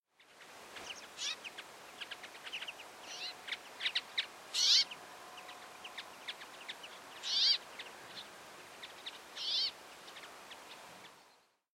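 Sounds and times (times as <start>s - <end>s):
brambling calling: 0.9s - 7.9s, 8.8s - 10.8s.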